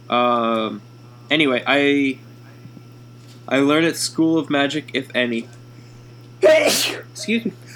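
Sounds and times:
steady low hum: 0.0 - 7.7
speech: 0.1 - 2.3, 3.5 - 5.6, 6.4 - 7.6
loud sneeze with a sharp breathy blast: 6.4 - 7.2.

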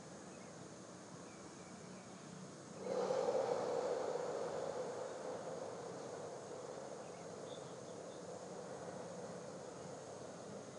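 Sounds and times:
person exhaling a long deep breath: 2.8 - 10.4.

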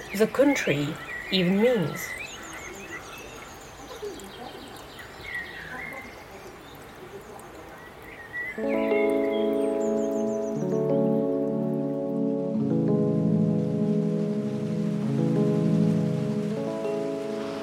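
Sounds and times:
rain hissing: 0.0 - 17.6
speech: 0.2 - 2.2
sustained slowly shifting musical chords: 8.6 - 17.6.

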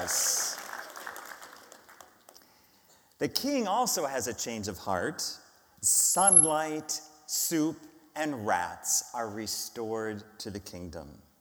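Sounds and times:
speech: 0.0 - 0.4, 3.2 - 11.3
small crowd cheering: 0.0 - 1.9
small crowd applauding: 0.0 - 2.7.

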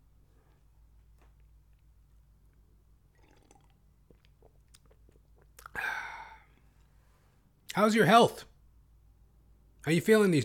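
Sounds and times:
sipping water: 2.5 - 6.7
swallowing water: 3.1 - 5.8
breathy exhale: 5.7 - 7.4
speech: 7.8 - 8.5, 9.8 - 10.4.

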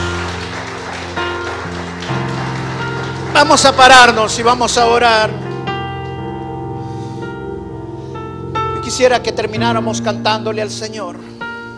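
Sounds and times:
crowd clapping: 0.0 - 5.6
sustained keyboard chords: 0.0 - 11.7
speech: 3.4 - 5.4, 8.9 - 11.4.

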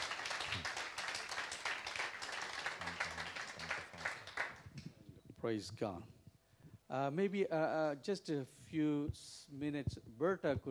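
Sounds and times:
audience hand clapping applause: 0.0 - 4.8
speech: 5.4 - 6.2, 6.9 - 10.6.

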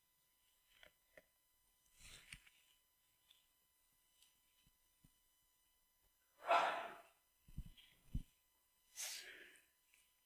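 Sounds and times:
sharp noisy intake of breath: 6.4 - 7.0
single sneeze: 6.4 - 7.1
soft low thumps: 7.5 - 8.3.

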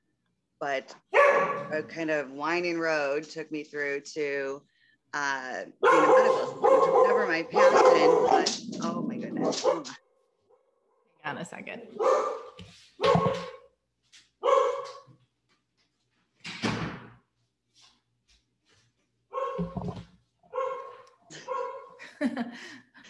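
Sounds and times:
speech: 0.6 - 10.0, 11.3 - 13.5
dog barking in a home office: 1.1 - 1.8, 5.8 - 10.0, 12.0 - 13.7, 14.4 - 15.1, 19.3 - 22.0.

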